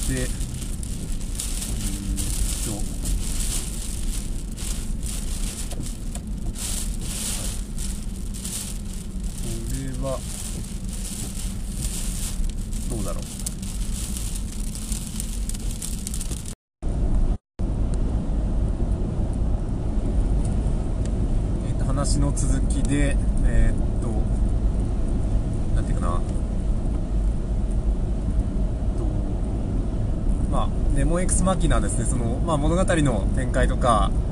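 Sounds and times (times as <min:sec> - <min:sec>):
car driving behind snow-clearing work: 0:00.0 - 0:16.6
road and engine noise heard from inside a car: 0:00.0 - 0:34.3
speech: 0:00.1 - 0:00.5, 0:02.6 - 0:03.0, 0:22.2 - 0:23.9, 0:31.1 - 0:34.3.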